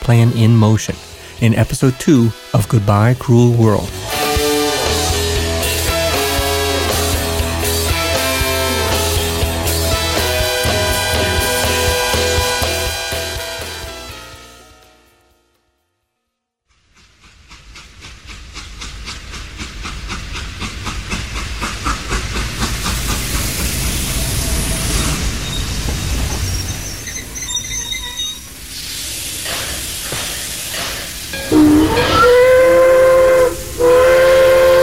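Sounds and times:
speech: 0:00.1 - 0:04.1
steam train hissing with rhythmic chuffing: 0:00.2 - 0:14.6, 0:16.7 - 0:34.8
steam train whistle blasts: 0:04.0 - 0:07.2, 0:10.0 - 0:14.3, 0:31.4 - 0:34.8.

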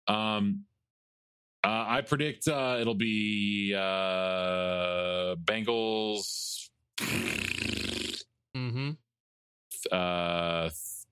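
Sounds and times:
speech: 0:00.1 - 0:00.7, 0:01.6 - 0:06.4, 0:08.6 - 0:09.0, 0:09.8 - 0:11.1
fart noises: 0:07.0 - 0:09.0.

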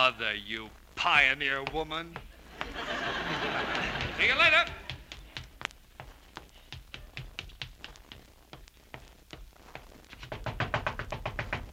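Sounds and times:
speech: 0:00.0 - 0:04.8
laughter: 0:02.4 - 0:05.0
knocking on a bedroom door: 0:10.3 - 0:11.7.

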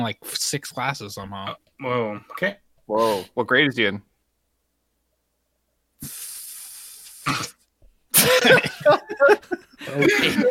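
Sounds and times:
speech: 0:00.0 - 0:04.1, 0:06.0 - 0:06.2, 0:08.4 - 0:10.4
voice making a breathy hiss imitating a tea kettle: 0:06.0 - 0:07.6
coughing laughter: 0:08.1 - 0:10.4.

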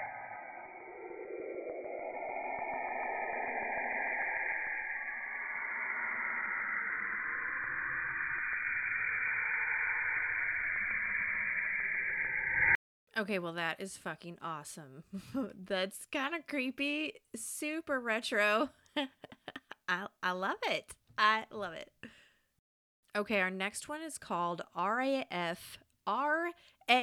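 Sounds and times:
planetary auroral radio wave emissions with rising tones: 0:00.0 - 0:12.8
speech: 0:13.2 - 0:19.2, 0:19.9 - 0:21.9, 0:23.1 - 0:27.0.

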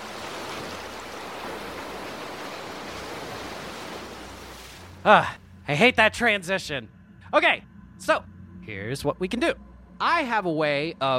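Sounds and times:
ocean waves lapping: 0:00.0 - 0:05.7
speech: 0:05.0 - 0:11.1.

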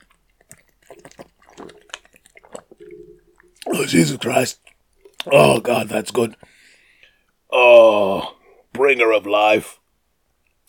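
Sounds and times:
person drinking water with wet gulps and swallowing: 0:00.0 - 0:06.5
speech: 0:03.7 - 0:04.7, 0:05.3 - 0:06.6, 0:07.5 - 0:09.8.

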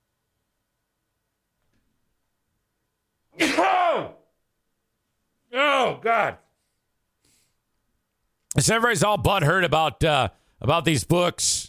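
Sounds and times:
sneeze: 0:03.4 - 0:04.3
speech: 0:05.9 - 0:06.4, 0:08.6 - 0:11.6.

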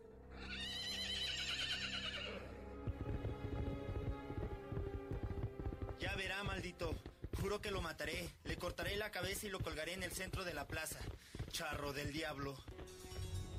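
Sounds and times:
horse whinnying: 0:00.3 - 0:02.6
horse hooves galloping along a road: 0:01.6 - 0:13.5
speech: 0:06.5 - 0:12.8.

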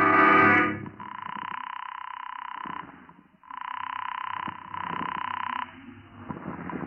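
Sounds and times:
telephone buzzing tone: 0:00.1 - 0:05.8
telephone ringing: 0:01.0 - 0:05.8.

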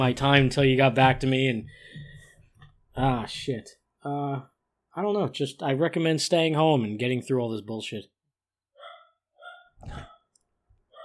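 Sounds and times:
speech: 0:00.0 - 0:01.9, 0:03.0 - 0:08.1
dogs barking indoors in short sharp bursts: 0:08.8 - 0:10.3.

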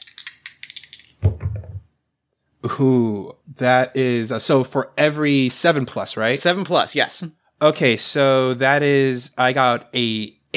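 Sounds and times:
two dice rattling in a cupped hand: 0:00.0 - 0:01.3
two dice tumbling onto a table: 0:00.0 - 0:01.9
speech: 0:02.6 - 0:10.5.

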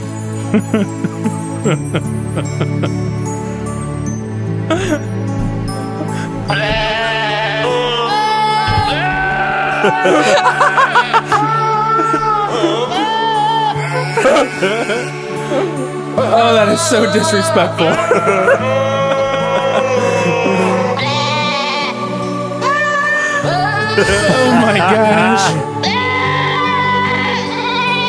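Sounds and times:
soft instrumental backing: 0:00.0 - 0:28.0
laughter: 0:00.4 - 0:03.0, 0:04.7 - 0:05.1, 0:06.1 - 0:21.2, 0:23.2 - 0:25.8
speech: 0:00.5 - 0:03.4, 0:04.7 - 0:05.2, 0:09.8 - 0:10.7, 0:14.2 - 0:18.9, 0:24.0 - 0:25.7
goats screaming to a Christmas carol melody: 0:06.5 - 0:15.2, 0:18.0 - 0:22.0, 0:22.6 - 0:27.9.

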